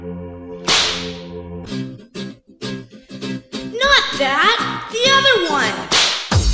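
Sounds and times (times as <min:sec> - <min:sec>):
loud sharp whip crack with a hissing tail: 0:00.6 - 0:01.2, 0:05.9 - 0:06.4
speech: 0:04.2 - 0:05.9.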